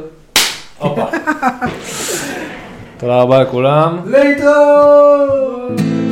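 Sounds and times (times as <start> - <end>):
high five hand slap: 0.3 - 0.8
people laughing: 0.8 - 3.0
people chattering: 0.8 - 4.0
speech: 0.8 - 5.9.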